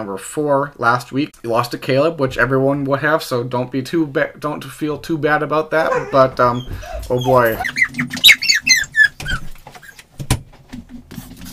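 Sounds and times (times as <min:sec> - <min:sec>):
speech: 0:00.0 - 0:08.4
faint rustling: 0:05.8 - 0:08.4
dog whining and squeaking excitedly: 0:05.8 - 0:10.0.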